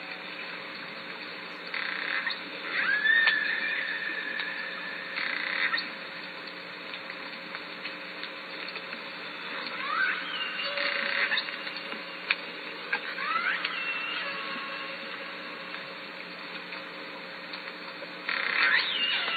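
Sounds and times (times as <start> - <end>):
constant background hum: 0.0 - 19.3
Southern Resident killer whale calls underwater at Lime Kiln: 1.8 - 5.9, 9.6 - 11.8, 13.0 - 15.5, 18.3 - 19.3.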